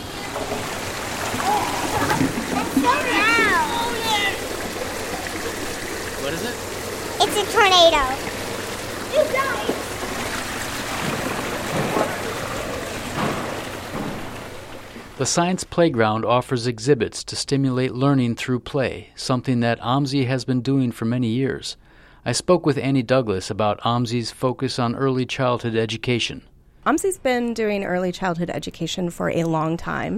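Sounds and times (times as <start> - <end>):
water running and splashing at children's museum water tables: 0.0 - 15.4
children's high-pitched voices and brief squeals: 1.4 - 4.6, 9.1 - 9.8
speech: 6.3 - 8.3, 9.1 - 9.7, 15.2 - 30.1.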